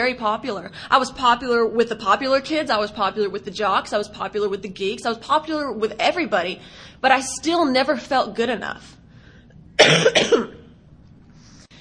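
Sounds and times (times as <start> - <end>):
speech: 0.0 - 9.0, 9.8 - 10.5
single loud harsh cough: 9.8 - 10.7.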